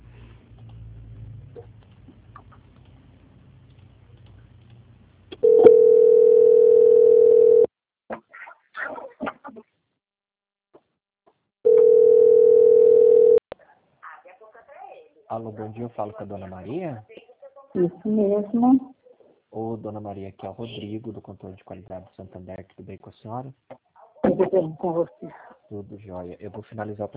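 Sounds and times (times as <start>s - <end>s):
telephone line tones while a customer-service call is transferred: 5.4s - 7.7s, 11.7s - 13.4s
speech: 15.4s - 17.2s, 17.8s - 18.9s, 19.6s - 27.1s.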